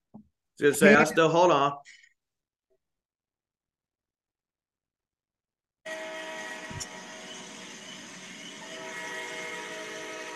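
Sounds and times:
speech: 0:00.6 - 0:02.0
express train rushing past: 0:05.9 - 0:10.3.

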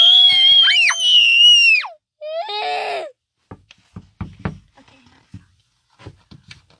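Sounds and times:
loud high-pitched screaming: 0:00.0 - 0:01.9
sharp irregular knocks on a door: 0:03.5 - 0:06.4.

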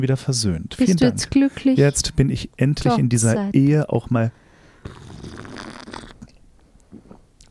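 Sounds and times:
speech: 0:00.0 - 0:05.0
loud slurp of coffee: 0:04.8 - 0:06.4
quiet mouth and swallowing sounds: 0:04.8 - 0:07.4.

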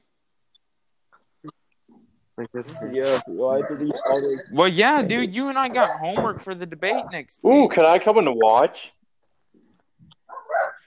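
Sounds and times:
speech: 0:02.4 - 0:09.0
dog barking: 0:02.7 - 0:04.4, 0:05.7 - 0:06.2, 0:10.3 - 0:10.8.

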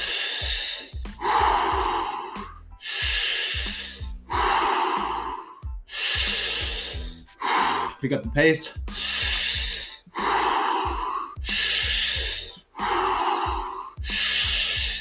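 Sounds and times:
heavy rhythmic breathing during an exercise: 0:00.0 - 0:15.0
speech: 0:08.0 - 0:09.0.

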